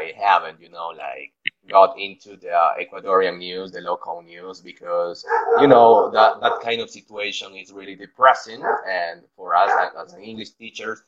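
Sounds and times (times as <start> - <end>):
speech: 0.1 - 11.0
dog barking: 5.2 - 6.8, 8.3 - 9.0, 9.6 - 10.0.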